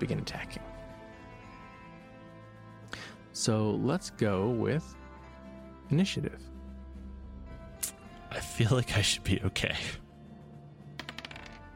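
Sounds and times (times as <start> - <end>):
speech: 0.0 - 0.7, 3.4 - 5.0, 5.9 - 6.5, 8.6 - 10.0
dice clattering across a hard tabletop: 11.0 - 11.7.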